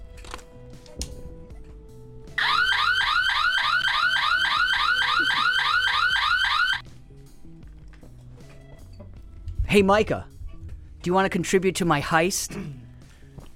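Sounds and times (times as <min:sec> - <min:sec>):
burglar alarm wailing in rising sweeps: 0:02.4 - 0:06.8
speech: 0:09.8 - 0:10.3, 0:11.0 - 0:12.8.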